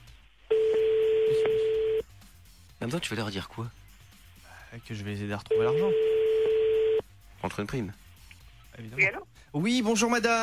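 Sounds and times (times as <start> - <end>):
steady telephone tone while placing a call to Calvados, France: 0.5 - 2.0, 5.5 - 7.0
speech: 2.8 - 3.8, 4.7 - 6.2, 7.4 - 8.0, 8.8 - 10.4.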